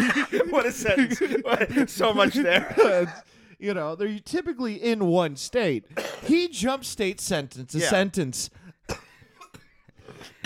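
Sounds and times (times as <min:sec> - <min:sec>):
laughter: 0:00.0 - 0:03.3
speech: 0:00.3 - 0:09.0
man coughing into a microphone: 0:01.1 - 0:03.2, 0:05.9 - 0:06.4, 0:08.8 - 0:10.4.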